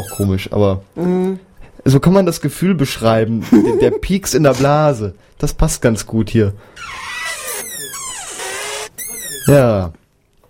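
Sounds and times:
speech: 0.0 - 7.1, 9.5 - 10.4
laughter: 3.4 - 4.0
high-pitched squealing and screeching: 6.8 - 9.6.

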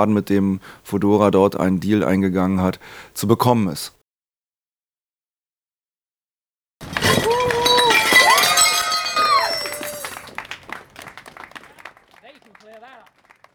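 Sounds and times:
speech: 0.0 - 4.0
metal bicycle spare parts clattering onto hard ground: 6.8 - 10.1.

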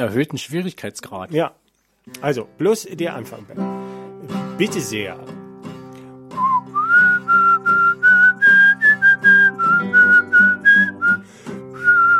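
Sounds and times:
speech: 0.0 - 5.4
person whistling a tune: 6.3 - 12.1.

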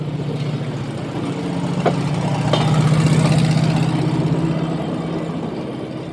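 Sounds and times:
small rail car engine idling on a turntable: 0.0 - 6.1.

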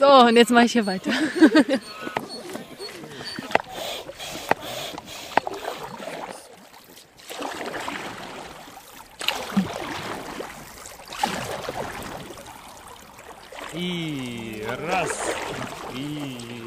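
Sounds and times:
speech: 0.0 - 2.0
laughter: 0.0 - 5.0, 13.8 - 16.6
paddles of inflatable catamarans splashing in river water: 0.0 - 16.6.

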